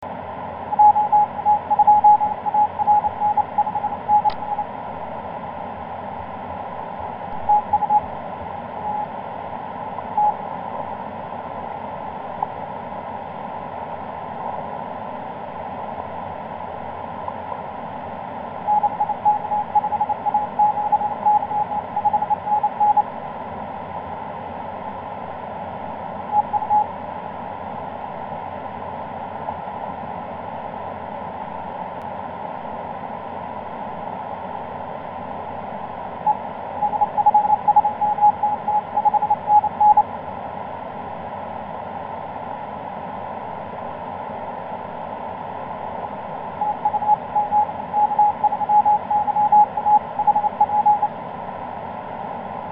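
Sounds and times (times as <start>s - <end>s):
CW Morse code tones on the 17m band: 0.7s - 4.7s, 7.4s - 8.1s, 18.7s - 23.1s, 26.3s - 26.9s, 36.3s - 40.1s, 46.5s - 51.2s.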